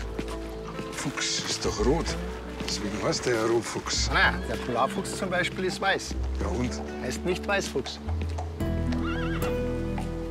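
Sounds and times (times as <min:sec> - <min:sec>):
speech: 0:01.0 - 0:08.4
horse whinnying: 0:08.8 - 0:10.1.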